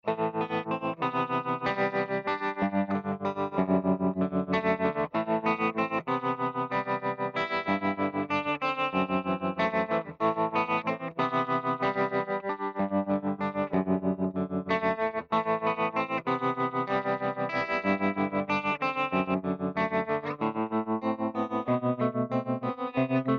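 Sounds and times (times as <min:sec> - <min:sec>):
humbucker electric guitar with tremolo and reverb: 0:00.0 - 0:23.3.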